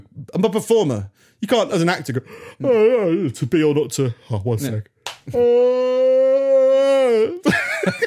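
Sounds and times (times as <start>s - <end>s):
speech: 0.3s - 6.1s, 7.2s - 8.0s
person yawning: 5.3s - 7.5s
laughter: 7.4s - 8.0s.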